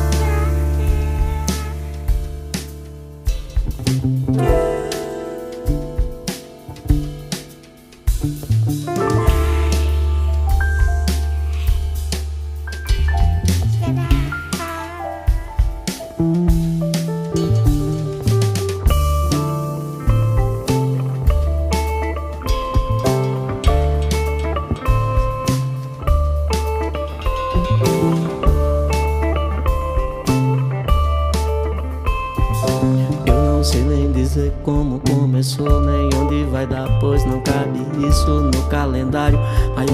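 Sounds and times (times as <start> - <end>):
warm instrumental backing with a deep bass line: 0.0 - 39.9
man singing a Brazilian song: 32.8 - 39.9.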